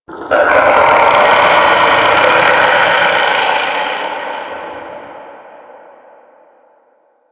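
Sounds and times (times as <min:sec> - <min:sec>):
distant eerie sound at shipyards: 0:00.1 - 0:07.3.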